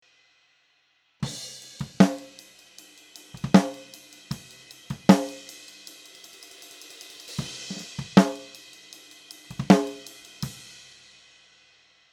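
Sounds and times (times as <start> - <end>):
snare drum: 1.2 - 2.4, 3.3 - 5.5, 7.3 - 8.6, 9.5 - 10.6.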